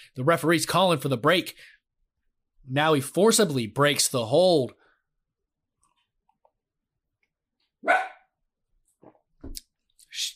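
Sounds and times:
speech: 0.0s - 1.8s, 2.6s - 4.8s
small dog barking: 7.8s - 8.3s.

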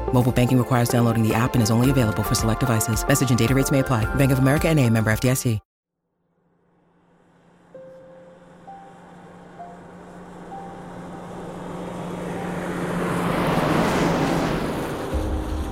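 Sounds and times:
speech: 0.1s - 5.7s
vehicle rushing past: 6.4s - 15.7s
steady traffic noise with low engine hum: 6.5s - 15.7s.

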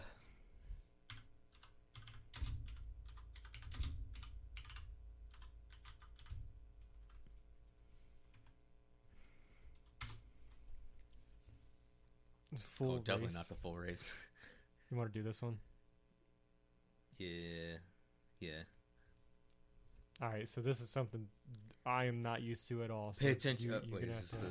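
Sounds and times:
typing on a computer keyboard: 1.1s - 7.3s, 9.8s - 10.6s
speech: 12.5s - 15.7s, 17.2s - 18.8s, 20.2s - 24.4s.

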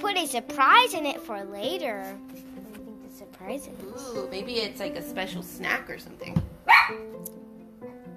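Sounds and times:
speech: 0.1s - 2.5s, 3.2s - 7.4s
dog barking: 6.6s - 7.1s.

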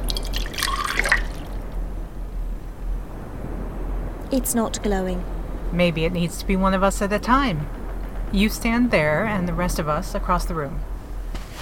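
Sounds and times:
saline and water mix pouring into a container: 0.0s - 1.6s
liquid dripping: 0.0s - 1.8s
low steady hum: 0.0s - 11.6s
speech: 4.3s - 10.9s.

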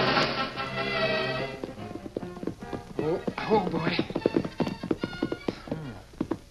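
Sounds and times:
horse hooves clip-clopping: 0.1s - 6.4s.

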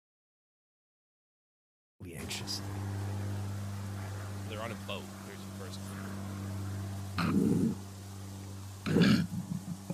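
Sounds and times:
speech: 2.0s - 3.0s, 4.5s - 6.2s, 7.2s - 7.8s
steady low hum: 2.0s - 9.9s
koala grunting deeply: 7.2s - 7.8s, 8.8s - 9.9s.

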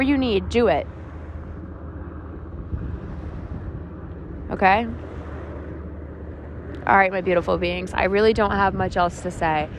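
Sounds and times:
ocean surf waves washing onto a shore: 0.0s - 9.7s
speech: 0.3s - 1.0s, 4.5s - 5.1s, 6.8s - 9.7s.

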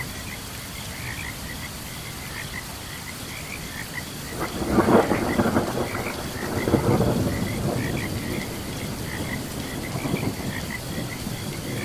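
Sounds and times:
frogs chirping during a thunderstorm: 0.0s - 11.8s
heavy rain: 0.0s - 11.8s
thunder: 4.3s - 11.8s.

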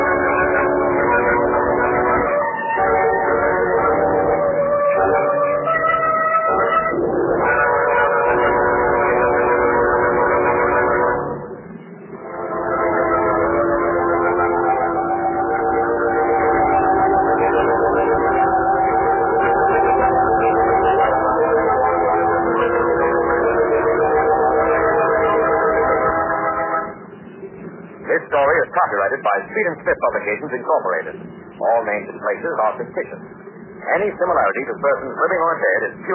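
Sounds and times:
train whistle blasts at a crossing: 0.0s - 11.4s, 12.2s - 27.0s
train wheels roaring past a crossing: 0.0s - 36.1s
speech: 29.8s - 36.1s.

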